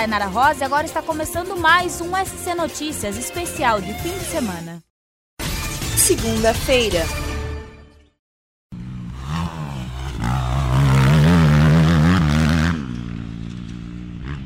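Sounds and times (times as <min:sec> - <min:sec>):
speech: 0:00.0 - 0:04.9, 0:06.0 - 0:07.2
motorcycle engine revving: 0:08.7 - 0:14.4.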